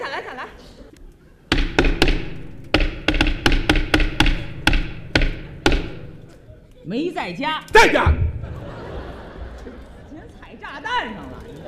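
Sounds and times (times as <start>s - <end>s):
laughter: 0.0s - 1.4s, 8.1s - 11.6s
knocking on a door: 1.5s - 6.2s
speech: 6.9s - 8.2s.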